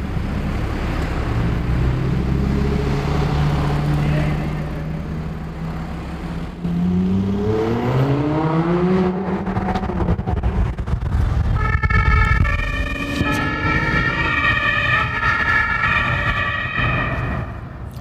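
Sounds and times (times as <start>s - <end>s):
road roar in a tunnel: 0.0s - 18.0s
sports car engine revving and accelerating in a tunnel in Hannover Germany: 0.2s - 15.2s
police car siren wailing in pursuit in a tunnel in Hannover: 11.0s - 17.9s.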